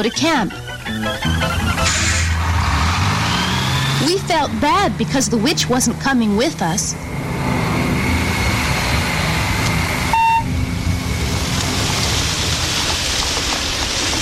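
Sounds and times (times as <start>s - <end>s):
speech: 0.0s - 2.1s, 4.0s - 7.1s
low rumble: 1.5s - 14.1s
short tonal beep: 10.1s - 10.6s
steady rain: 10.7s - 14.1s.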